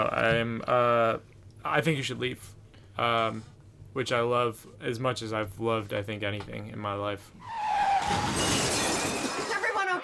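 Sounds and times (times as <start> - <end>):
speech: 0.0 - 8.7
window glass shattering as a hot dog shaped car smashes through: 8.0 - 9.7.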